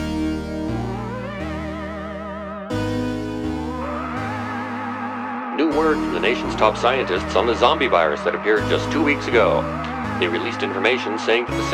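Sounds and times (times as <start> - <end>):
song intro of sustained synth-like tones with effects: 0.0 - 11.7
stepping bass line: 0.0 - 11.7
speech: 5.8 - 11.7.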